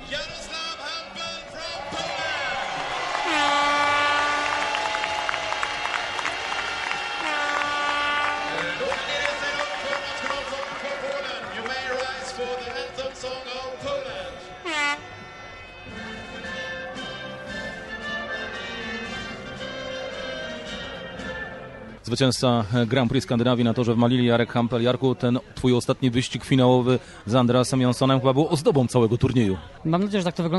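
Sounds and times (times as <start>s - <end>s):
speedway stadium crowd roaring and cheering after the final heat: 0.0s - 21.0s
air horns blaring in a speedway stadium: 3.1s - 9.8s, 13.1s - 21.4s
speech: 22.2s - 30.5s.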